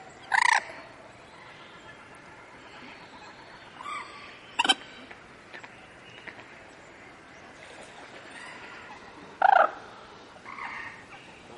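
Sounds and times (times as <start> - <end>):
quiet background hiss: 0.0 - 11.5
common moorhen croaking: 0.2 - 0.8, 1.4 - 5.1, 8.3 - 11.5.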